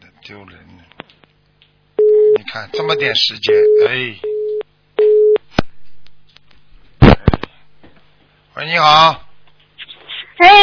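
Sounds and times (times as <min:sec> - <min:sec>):
speech: 0:00.3 - 0:00.9, 0:02.4 - 0:04.3, 0:08.6 - 0:09.2, 0:10.4 - 0:10.6
telephone line tone beeps while call connects: 0:02.0 - 0:05.4.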